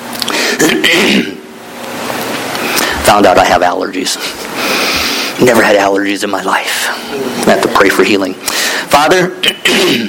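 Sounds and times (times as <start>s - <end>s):
person coughing: 0.4s - 1.4s, 9.4s - 10.0s
speech: 0.6s - 1.3s, 3.1s - 10.0s.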